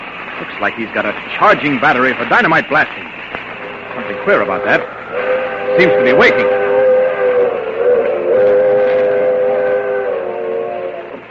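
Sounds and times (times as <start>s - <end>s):
low rumble of rolling rail noise: 0.0s - 11.2s
speech: 0.4s - 3.2s, 4.0s - 6.7s
train whistle blowing: 3.6s - 11.2s.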